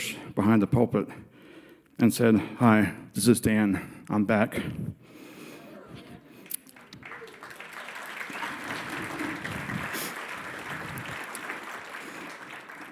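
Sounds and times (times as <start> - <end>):
speech: 0.4 - 1.3, 2.0 - 5.2
large church audience applauding indoors: 6.2 - 12.9.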